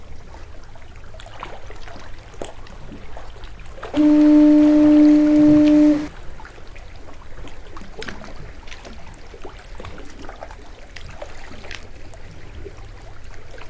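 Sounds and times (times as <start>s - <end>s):
generated lighthouse foghorn: 4.0s - 6.1s.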